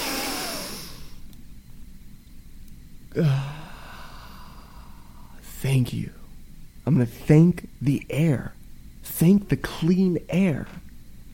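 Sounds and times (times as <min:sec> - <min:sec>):
speech: 0:03.1 - 0:03.6, 0:05.7 - 0:06.2, 0:06.8 - 0:10.8
short voiced sigh on the exhale: 0:03.1 - 0:05.4
big deep breath in: 0:03.2 - 0:05.3.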